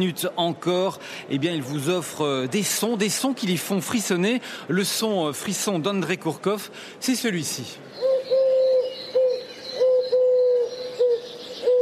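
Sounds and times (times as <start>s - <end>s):
speech: 0.0s - 8.1s
faint hiss: 0.0s - 11.8s
turtle dove cooing: 8.0s - 11.8s.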